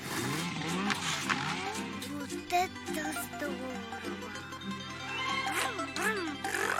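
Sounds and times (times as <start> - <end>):
small snowmobile engine revving while ridden: 0.0 - 2.0, 5.0 - 6.7
speech: 2.5 - 3.7.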